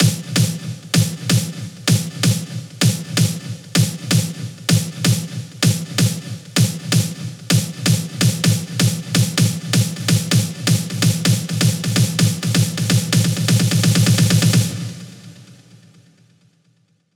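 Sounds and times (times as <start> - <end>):
cascading house electro fills: 0.0 - 15.4.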